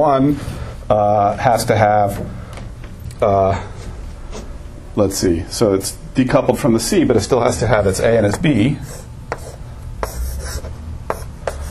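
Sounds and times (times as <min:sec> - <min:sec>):
speech: 0:00.0 - 0:02.4, 0:03.2 - 0:03.7, 0:05.0 - 0:09.0
writing on a board while drawing a diagram: 0:08.3 - 0:11.6.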